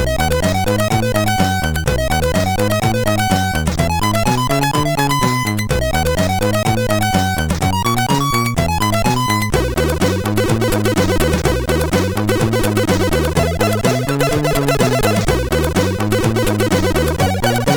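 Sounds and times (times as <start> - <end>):
chiptune music on a MOS6581R4 sound chip: 0.0 - 17.7.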